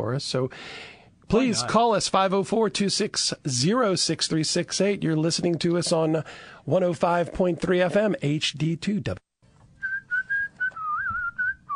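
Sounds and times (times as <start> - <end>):
speech: 0.0 - 9.2
person whistling a wavering sustained tune: 9.8 - 11.7.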